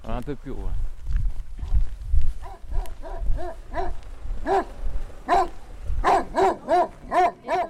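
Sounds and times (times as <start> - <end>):
speech: 0.2 - 0.9, 3.2 - 5.4
low rumbling: 0.6 - 7.5
dog barking: 2.4 - 4.7, 5.3 - 7.6.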